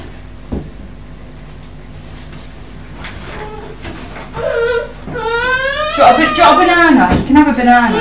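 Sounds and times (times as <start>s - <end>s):
steady hum: 0.0s - 7.9s
boy crying and whimpering in wavering wails: 4.4s - 6.9s, 7.8s - 7.9s
speech: 6.0s - 7.9s.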